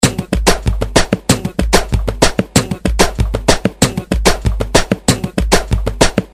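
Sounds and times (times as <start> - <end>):
samba reggae drum beat: 0.0 - 6.3.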